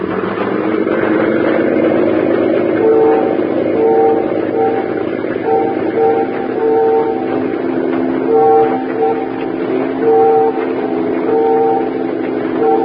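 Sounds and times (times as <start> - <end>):
constant low rumble of a boat engine: 0.0 - 12.8
ferry whistles blowing Morse code signals: 2.8 - 12.8.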